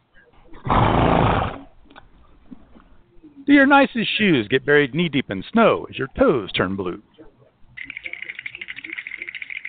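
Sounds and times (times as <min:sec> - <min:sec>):
loud rough breathy horse snort: 0:00.6 - 0:01.7
speech: 0:03.5 - 0:07.1.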